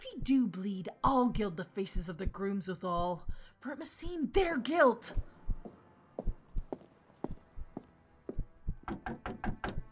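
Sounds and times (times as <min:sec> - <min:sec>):
speech: 0:00.2 - 0:05.3, 0:09.0 - 0:09.4
loud knocking on a wooden door: 0:08.7 - 0:09.9.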